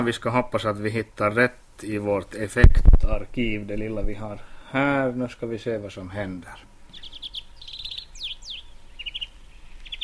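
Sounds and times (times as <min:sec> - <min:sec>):
speech: 0:00.0 - 0:07.1
European greenfinch song: 0:06.4 - 0:10.0.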